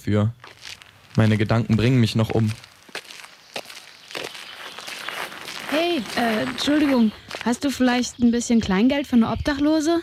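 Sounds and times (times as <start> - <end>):
speech: 0.0 - 0.6, 1.2 - 2.7, 6.0 - 10.0
soft footsteps on a walk through a small city park: 0.4 - 8.3.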